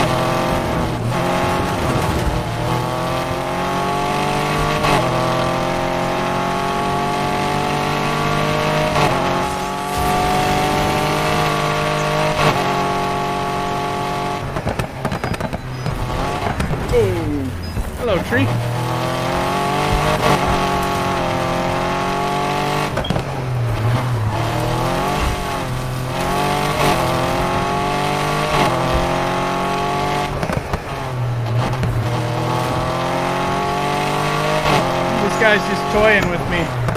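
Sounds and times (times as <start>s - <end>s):
car engines roaring in a racing video game: 0.0s - 36.9s.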